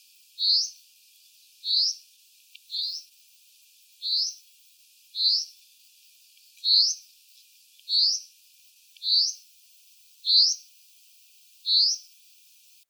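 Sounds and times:
common chaffinch Fringilla coelebs calling: 0:00.4 - 0:00.8, 0:01.6 - 0:03.1, 0:04.0 - 0:04.5, 0:05.1 - 0:05.6, 0:06.6 - 0:07.1, 0:07.9 - 0:08.3, 0:09.0 - 0:09.5, 0:10.3 - 0:10.7, 0:11.7 - 0:12.2.

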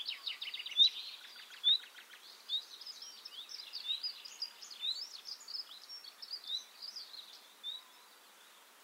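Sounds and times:
Luscinia megarhynchos common nightingale singing: 0:00.0 - 0:08.8.

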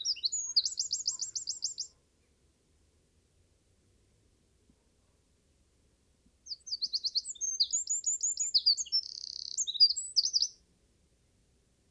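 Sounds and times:
Eurasian wren Troglodytes troglodytes song with piercing notes and buzzy trill: 0:00.0 - 0:02.0, 0:06.4 - 0:10.6.

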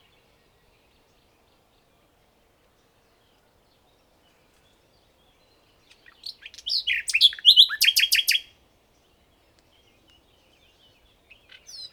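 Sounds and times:
common nightingale singing: 0:05.5 - 0:08.5, 0:09.4 - 0:11.9.

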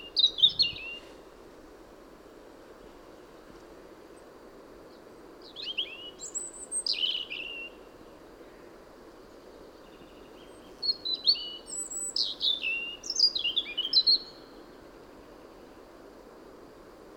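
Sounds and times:
European robin Erithacus rubecula singing: 0:00.0 - 0:01.2, 0:05.4 - 0:08.1, 0:09.6 - 0:14.6.

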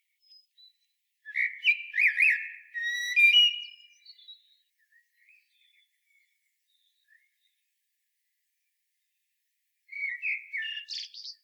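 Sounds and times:
Common blackbird Turdus merula whistled phrase: 0:01.3 - 0:03.9, 0:09.9 - 0:11.4.

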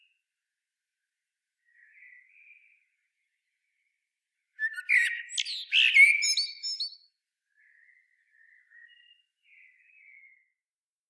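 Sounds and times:
common blackbird Turdus merula mellow warbled phrase: 0:04.6 - 0:07.0.

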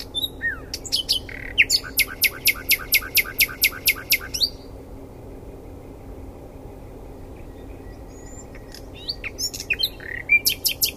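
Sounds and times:
common nightingale Luscinia megarhynchos whistled song: 0:00.0 - 0:04.7, 0:07.4 - 0:10.9.

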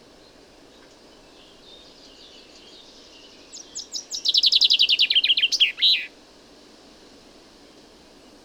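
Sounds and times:
common chaffinch Fringilla coelebs singing: 0:02.0 - 0:06.1.

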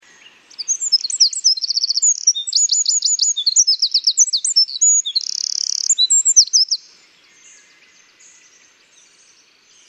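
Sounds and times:
Eurasian wren Troglodytes troglodytes singing: 0:00.0 - 0:09.8.

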